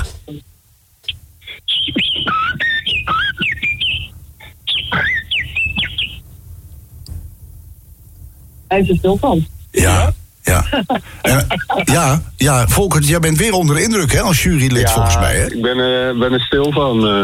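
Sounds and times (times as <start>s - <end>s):
speech: 0.3s - 0.5s, 8.7s - 17.2s
person whistling an imitation of blackbird song: 1.5s - 6.2s
laughter: 1.7s - 6.0s, 9.8s - 15.6s.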